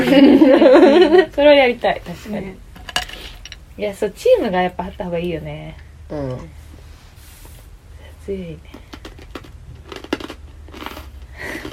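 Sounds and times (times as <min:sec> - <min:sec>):
laughter: 0:00.0 - 0:01.3
speech: 0:00.2 - 0:02.6, 0:03.8 - 0:06.6, 0:08.3 - 0:08.8
mouth noises: 0:06.1 - 0:06.6
crunchy snack being chewed: 0:08.7 - 0:11.7.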